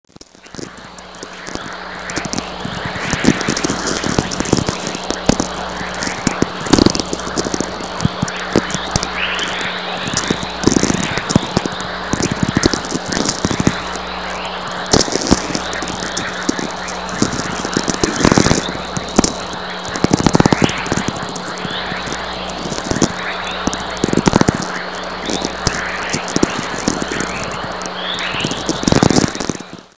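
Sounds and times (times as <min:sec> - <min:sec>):
chorus natural VLF radio emissions: 0:00.0 - 0:29.9.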